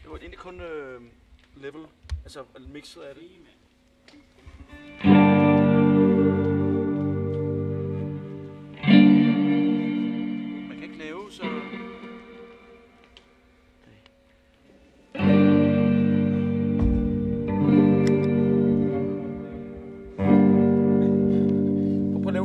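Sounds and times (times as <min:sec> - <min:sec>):
speech: 0:00.2 - 0:04.2
played-back music of buzzy chords with reverb added: 0:04.8 - 0:13.8, 0:15.2 - 0:22.4.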